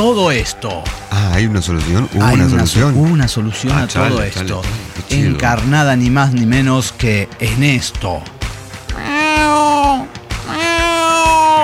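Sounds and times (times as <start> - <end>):
speech: 0.0 - 8.4
cat meowing: 8.9 - 11.6.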